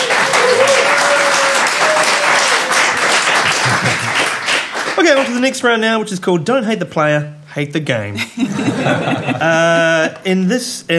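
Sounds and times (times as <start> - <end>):
crowd applauding: 0.0 - 5.4
laughter: 3.5 - 4.4, 8.2 - 10.2
speech: 5.1 - 10.9.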